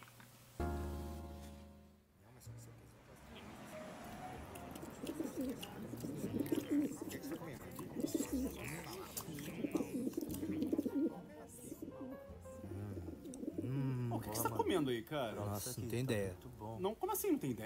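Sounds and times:
flock of pigeons cooing: 4.3 - 14.5
speech: 5.0 - 9.8, 14.7 - 17.6.

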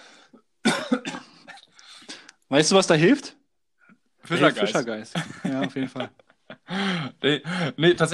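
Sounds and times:
person coughing: 0.6 - 1.7
speech: 2.5 - 3.4, 4.3 - 8.1
laughter: 4.3 - 7.8.

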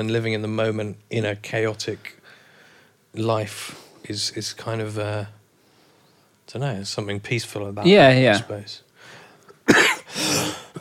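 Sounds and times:
speech: 0.0 - 2.2, 3.1 - 5.4, 6.5 - 8.8
person coughing: 9.6 - 10.8.

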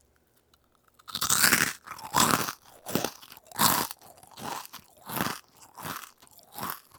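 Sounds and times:
person chewing a crispy mochi rice nugget: 0.9 - 6.9.

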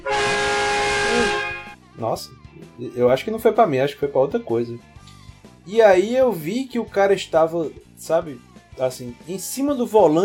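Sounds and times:
car horn honking: 0.0 - 1.8
speech: 2.0 - 4.9, 5.6 - 10.2.

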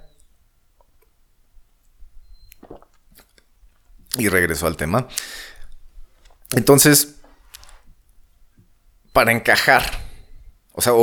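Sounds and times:
person sipping and swallowing coffee: 2.1 - 6.6
small wet mouth clicks: 2.3 - 3.5, 5.1 - 5.8
speech: 4.2 - 5.5, 6.5 - 7.2, 9.2 - 10.0, 10.8 - 11.0.

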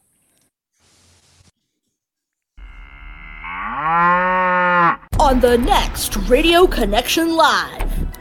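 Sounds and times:
bull mooing: 2.6 - 5.1
speech: 5.3 - 7.8.

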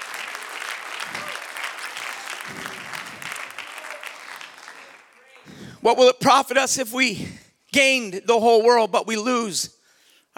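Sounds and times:
congregation clapping hands in applause: 0.0 - 5.8
speech: 5.8 - 9.8.

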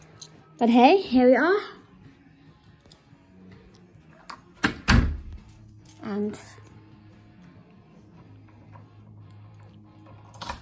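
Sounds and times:
speech: 0.6 - 1.8, 6.1 - 6.6
heavy wooden door clunks as a door is pulled open: 4.6 - 5.3.

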